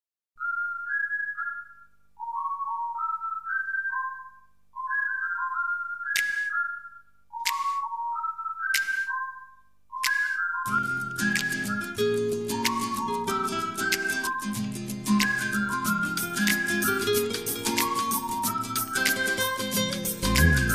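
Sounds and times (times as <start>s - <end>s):
Arabian whistle: 0.4s - 20.7s.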